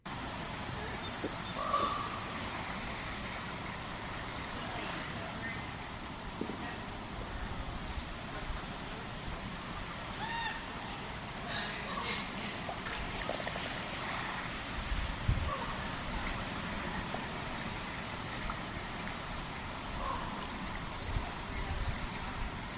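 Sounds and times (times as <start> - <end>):
Townsend's Warbler song variant: 0.2 - 6.0, 11.5 - 14.2, 19.6 - 22.7
steady low outdoor rumble: 1.7 - 12.1, 13.6 - 20.3.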